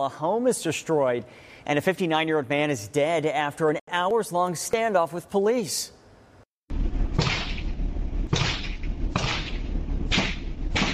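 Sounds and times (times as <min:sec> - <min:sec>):
speech: 0:00.0 - 0:06.0
noise: 0:00.0 - 0:10.9
gunshots fired during police standoff at a home: 0:07.2 - 0:07.7, 0:08.3 - 0:10.9.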